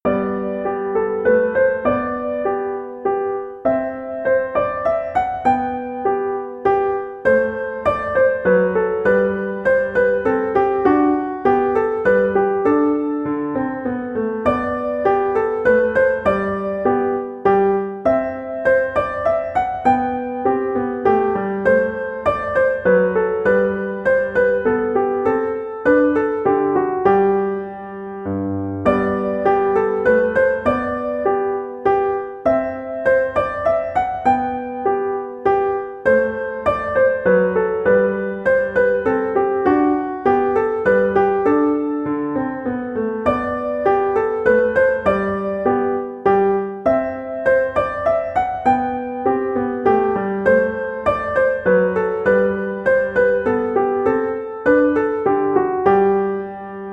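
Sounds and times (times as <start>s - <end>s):
minuet on piano: 0.0s - 56.9s.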